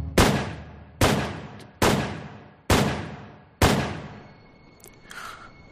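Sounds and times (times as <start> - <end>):
gunshots fired at close range: 0.1 - 4.2.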